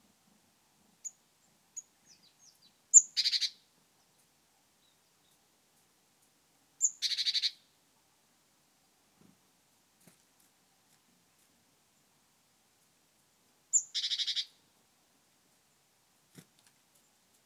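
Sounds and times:
great tit Parus major giving harsh buzzy churr calls: 0:02.9 - 0:03.6, 0:06.8 - 0:07.6, 0:13.7 - 0:14.6.

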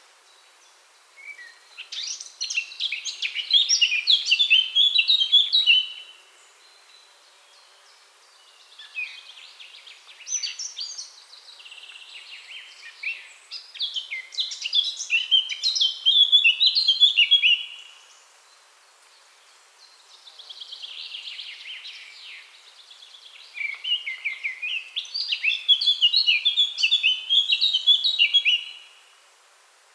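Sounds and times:
Eurasian blackcap Sylvia atricapilla song: 0:01.2 - 0:06.1, 0:08.4 - 0:18.0, 0:19.8 - 0:29.0.

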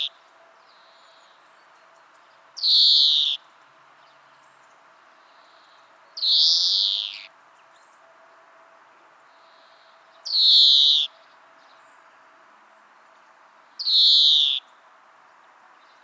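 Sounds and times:
European greenfinch Chloris chloris wheezing buzzes: 0:02.6 - 0:03.4, 0:05.2 - 0:07.3, 0:09.3 - 0:11.2.

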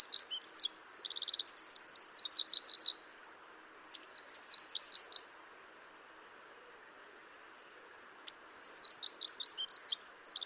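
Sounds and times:
Eurasian wren Troglodytes troglodytes singing rattling trills: 0:00.0 - 0:03.2, 0:03.9 - 0:05.4, 0:08.3 - 0:10.4.

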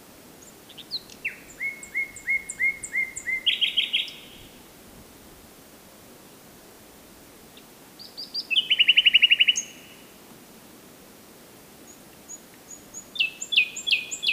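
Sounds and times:
Common nightingale singing, Luscinia megarhynchos: 0:00.4 - 0:04.6, 0:07.5 - 0:10.1, 0:11.9 - 0:14.3.

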